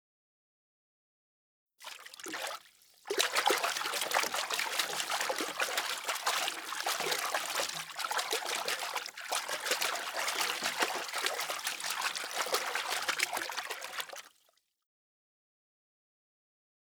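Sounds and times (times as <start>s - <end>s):
water movement: 1.8s - 14.3s.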